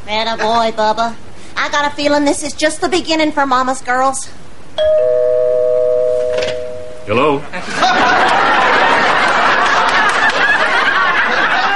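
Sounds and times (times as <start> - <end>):
speech: 0.1 - 5.2, 7.1 - 8.4
electronic doorbell chime: 4.8 - 7.1
laughter: 7.3 - 11.7.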